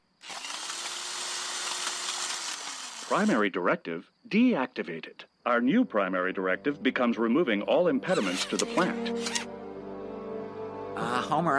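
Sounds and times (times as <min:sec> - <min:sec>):
power drill whirring: 0:00.2 - 0:03.4, 0:08.1 - 0:09.5
speech: 0:03.1 - 0:09.6, 0:11.0 - 0:11.5.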